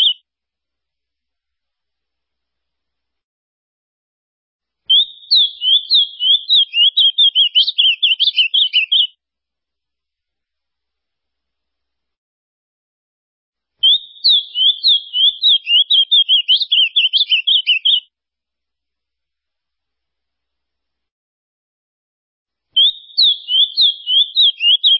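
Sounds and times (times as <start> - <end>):
ultramarine grosbeak song: 0.0 - 0.2, 4.9 - 9.1, 13.8 - 18.0, 22.8 - 24.9.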